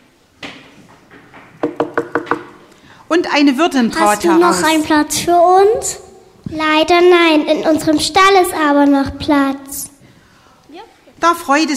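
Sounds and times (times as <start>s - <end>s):
knocking on an inn's wooden door: 0.4s - 2.6s
speech: 3.1s - 9.9s, 11.2s - 11.7s.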